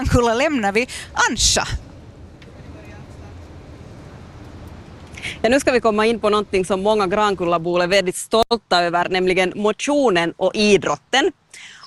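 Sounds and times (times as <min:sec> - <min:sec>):
moving bus engine rumble and road noise inside the bus: 0:00.0 - 0:08.5
speech: 0:00.1 - 0:01.8, 0:05.4 - 0:11.8.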